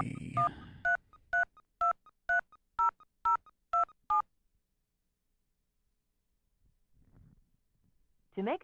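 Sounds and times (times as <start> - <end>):
touch-tone phone keypad beeps entering a home phone number: 0.0 - 4.2.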